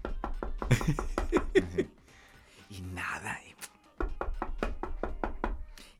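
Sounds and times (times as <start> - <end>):
hard knocks on a closed door: 0.0 - 1.6, 4.0 - 5.7
laughter: 0.7 - 1.9
speech: 0.7 - 1.9.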